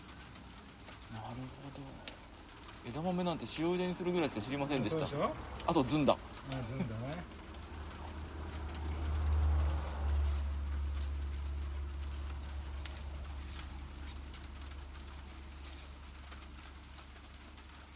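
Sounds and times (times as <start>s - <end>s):
rain falling on a farm field: 0.0s - 17.9s
scattered rain drips on a farm field: 0.0s - 17.9s
speech: 1.2s - 2.2s, 2.8s - 7.3s
low rumble: 4.0s - 17.9s.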